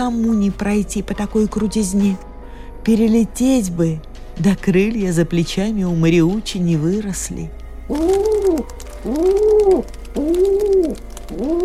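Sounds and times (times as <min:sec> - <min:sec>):
speech: 0:00.0 - 0:11.6
pigeon cooing: 0:07.9 - 0:11.6.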